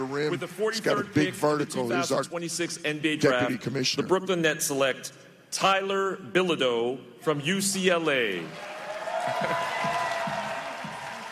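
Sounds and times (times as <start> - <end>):
big arena crowd cheering and applauding for draft pick: 0.0 - 1.6, 8.2 - 11.3
speech: 0.0 - 8.7, 9.3 - 10.0.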